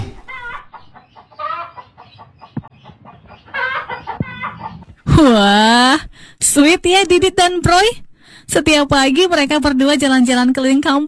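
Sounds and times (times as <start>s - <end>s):
chicken clucking: 0.0s - 5.2s
speech: 5.2s - 11.0s.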